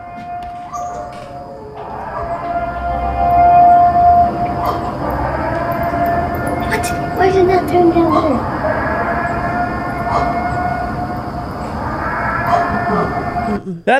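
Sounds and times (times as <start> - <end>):
loud sustained curfew warning siren wailing: 0.0 - 13.6
rumbling background: 0.0 - 13.6
speech: 13.7 - 13.9.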